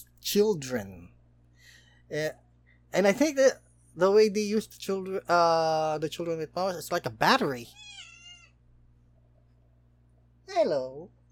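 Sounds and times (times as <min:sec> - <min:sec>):
speech: 0:00.0 - 0:01.2, 0:02.1 - 0:08.0, 0:10.5 - 0:11.2
faint steady hum: 0:00.0 - 0:11.3
cat meowing: 0:07.7 - 0:08.6.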